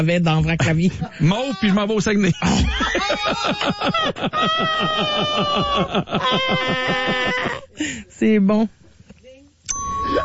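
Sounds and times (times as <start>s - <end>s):
speech: 0.0s - 8.8s
laughter: 0.8s - 7.8s
ding sound effect: 9.7s - 10.2s.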